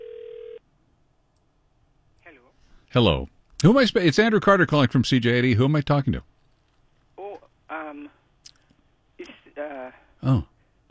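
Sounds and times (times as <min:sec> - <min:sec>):
telephone being dialed: 0:00.0 - 0:00.6
faint low noise: 0:00.0 - 0:10.8
speech: 0:02.9 - 0:06.3, 0:10.2 - 0:10.8.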